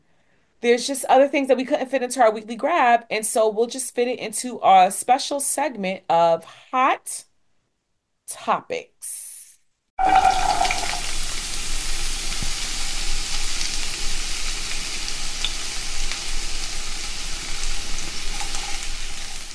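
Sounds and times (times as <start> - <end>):
speech: 0.6 - 7.3, 8.3 - 9.2, 10.0 - 10.6
loud sizzling hiss: 10.0 - 19.5.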